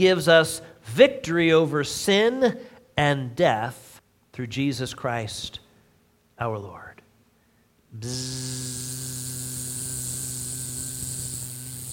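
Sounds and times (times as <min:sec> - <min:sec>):
speech: 0:00.0 - 0:03.8, 0:04.4 - 0:05.6, 0:06.4 - 0:06.9, 0:07.9 - 0:09.7
voice imitating a buzzing bee: 0:08.0 - 0:11.9.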